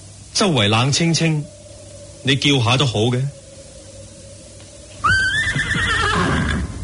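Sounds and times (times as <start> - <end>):
speech: 0.4 - 1.6, 2.2 - 3.4
horse whinnying: 5.0 - 6.8.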